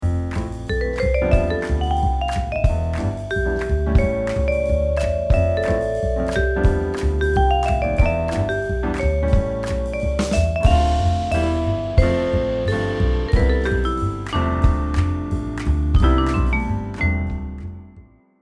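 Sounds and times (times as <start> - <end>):
background jazz music: 0.0 - 18.0.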